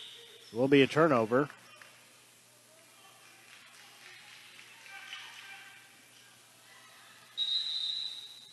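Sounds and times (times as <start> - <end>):
speech: 0.5 - 1.6
referee's whistle blast: 7.4 - 8.5.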